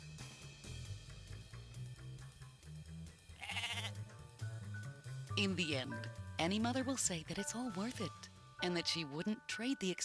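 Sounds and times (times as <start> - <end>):
steady music: 0.0 - 10.0
goat bleating: 3.4 - 4.0
speech: 5.4 - 10.0.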